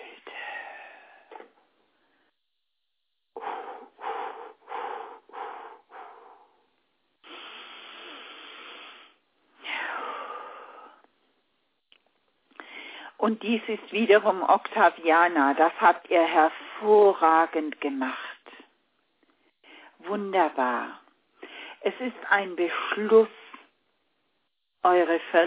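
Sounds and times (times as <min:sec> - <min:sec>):
person breathing deeply: 0:00.0 - 0:02.4, 0:03.4 - 0:11.1, 0:12.6 - 0:13.2
speech: 0:13.2 - 0:18.2, 0:20.1 - 0:21.0, 0:21.8 - 0:23.4, 0:24.8 - 0:25.4.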